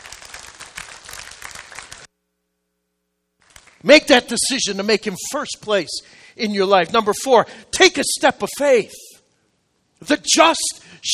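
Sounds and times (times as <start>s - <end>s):
audience applause: 0.0s - 2.1s
speech: 3.8s - 9.0s, 10.0s - 11.1s.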